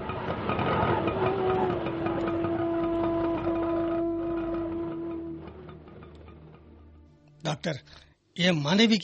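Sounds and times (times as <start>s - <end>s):
small auto rickshaw engine rumbling and revving as it drives off: 0.0s - 6.8s
speech: 7.5s - 9.0s.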